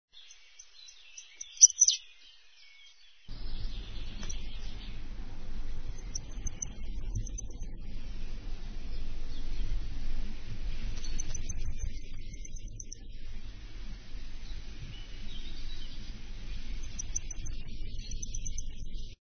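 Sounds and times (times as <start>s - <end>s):
firecrest singing: 0.2s - 19.1s.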